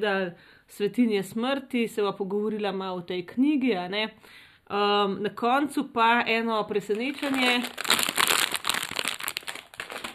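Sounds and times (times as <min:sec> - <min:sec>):
speech: 0:00.0 - 0:08.1
plastic package of jelly beans crinkling as it is handled: 0:06.8 - 0:10.1.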